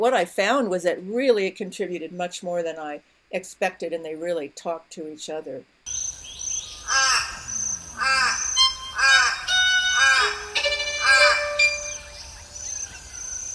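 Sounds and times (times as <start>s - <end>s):
speech: 0.0s - 6.0s
faint high hiss: 0.0s - 13.5s
pied butcherbird singing: 5.9s - 13.5s.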